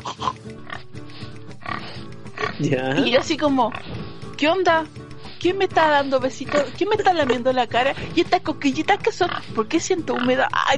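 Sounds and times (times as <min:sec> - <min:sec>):
human voice imitating a pig oinking with rough nasal grunting snorts: 0:00.0 - 0:00.9, 0:02.4 - 0:03.3
speech: 0:02.6 - 0:10.7.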